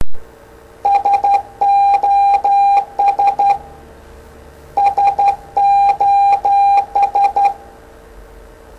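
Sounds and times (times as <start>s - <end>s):
Morse code SOS signal: 0.8s - 3.6s, 4.8s - 7.6s.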